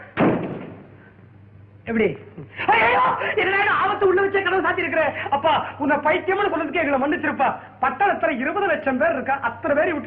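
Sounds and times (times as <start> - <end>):
door shutting with a heavy thud: 0.2 - 0.9
speech: 1.9 - 10.0.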